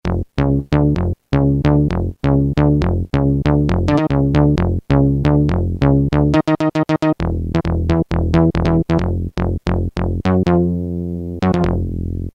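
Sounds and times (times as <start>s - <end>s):
coarse synth bass: 0.0s - 12.3s.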